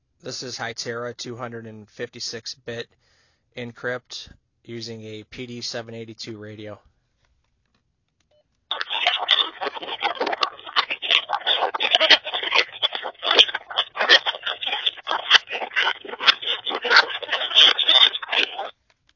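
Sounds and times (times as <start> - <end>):
Hytera 256-bit encrypted DMR digital radio signal from PD782 handheld radio: 8.7 - 18.8.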